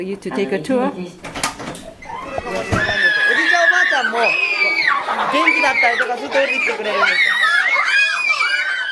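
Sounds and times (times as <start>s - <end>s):
speech: 0.0s - 1.3s, 4.0s - 4.5s, 5.1s - 7.4s
overlapping chatter of young children: 0.9s - 8.9s
crowd of young children shrieking and squealing at a preschool: 1.9s - 8.9s.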